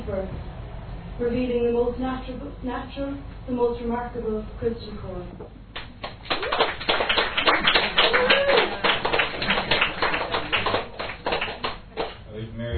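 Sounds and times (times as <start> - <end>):
speech: 0.1 - 0.5, 1.2 - 5.6
crowd applauding: 5.8 - 12.3.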